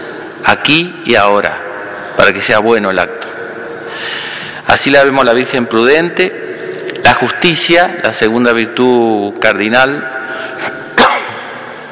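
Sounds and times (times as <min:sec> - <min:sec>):
speech: 0:00.5 - 0:01.6, 0:02.2 - 0:03.3, 0:04.7 - 0:06.4, 0:07.1 - 0:10.8
priest coughing during a sermon: 0:11.0 - 0:11.5.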